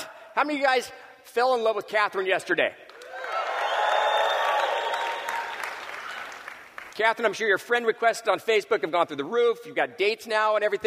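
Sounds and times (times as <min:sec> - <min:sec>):
speech: 0:00.4 - 0:02.8, 0:07.0 - 0:10.8
crowd of people clapping: 0:02.9 - 0:07.3.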